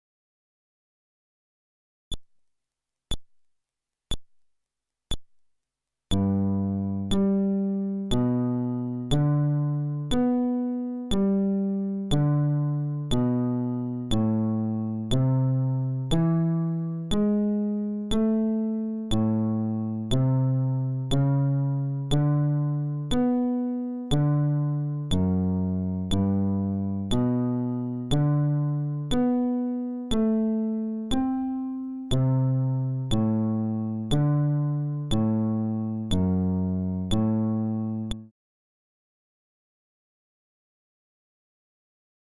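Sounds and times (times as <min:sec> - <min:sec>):
fretless bass arpeggio: 0:06.1 - 0:38.3.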